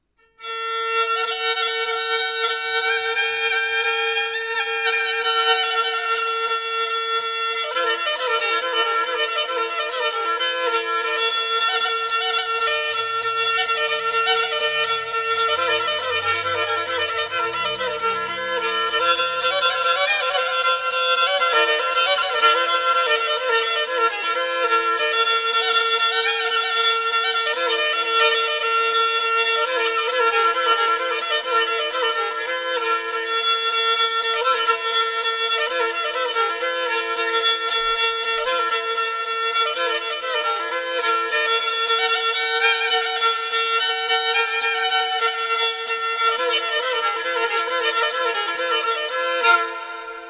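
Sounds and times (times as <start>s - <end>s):
Black Sea kemence three-stringed fiddle solo improvisation tuned in fourths: 0.0s - 50.2s.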